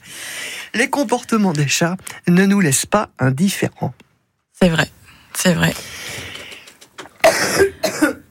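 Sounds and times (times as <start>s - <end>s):
speech: 0.8s - 6.0s, 7.5s - 8.2s
person coughing: 7.2s - 8.2s.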